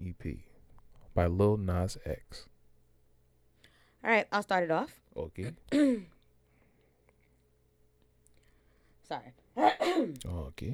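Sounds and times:
faint steady hum: 0.0 - 10.7
speech: 1.2 - 2.5, 4.0 - 6.1, 9.1 - 10.7
cough: 5.7 - 6.2, 9.6 - 10.3.

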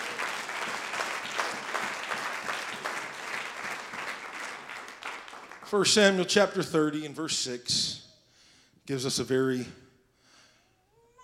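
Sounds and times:
audience clapping hands: 0.0 - 6.2
speech: 5.7 - 8.0, 8.9 - 9.8.

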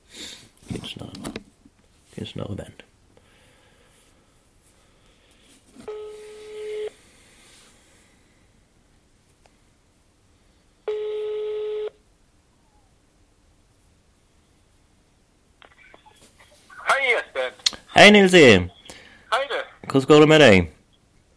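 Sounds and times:
speech: 2.2 - 2.9, 18.0 - 18.7, 19.9 - 20.8
phone line ringing back with buzzy tones: 5.8 - 7.0, 10.9 - 12.0.

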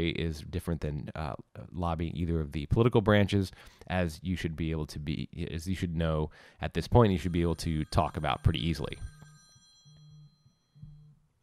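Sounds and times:
speech: 0.0 - 9.2
mobile phone ringing during a lecture: 7.1 - 11.3.

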